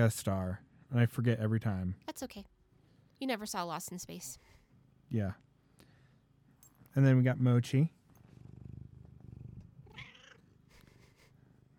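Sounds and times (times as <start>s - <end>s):
speech: 0.0s - 2.5s, 3.2s - 5.4s, 6.9s - 8.0s
cat purring: 8.1s - 11.7s
cat letting out a short strained meow-like cry: 9.9s - 10.4s.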